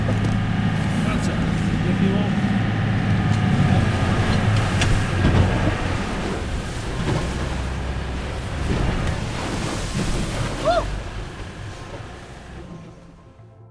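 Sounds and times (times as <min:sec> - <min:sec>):
wind buffeting the microphone: 0:00.0 - 0:12.6
rushing sea water: 0:00.0 - 0:13.4
boat engine rumble in choppy sea: 0:00.0 - 0:13.6.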